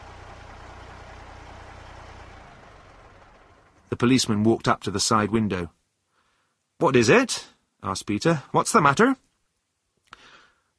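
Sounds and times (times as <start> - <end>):
heavy lorry engine idling after stopping: 0.0 - 4.4
speech: 3.9 - 5.8, 6.8 - 9.3.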